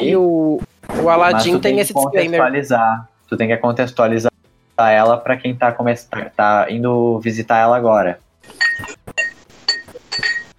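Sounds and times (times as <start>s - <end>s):
speech: 0.0s - 9.2s
ceramic dishes clinking together: 8.5s - 10.5s.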